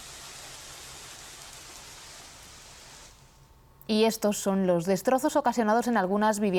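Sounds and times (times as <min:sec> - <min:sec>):
steady rain pouring: 0:00.0 - 0:03.4
speech: 0:03.9 - 0:06.5.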